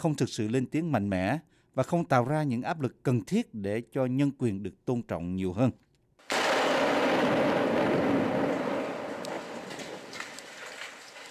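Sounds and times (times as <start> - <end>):
speech: 0.0 - 5.8
sharp cracks: 6.2 - 11.2
barrel-bomb blast dropped from a helicopter on the outskirts of Aleppo: 6.3 - 11.2.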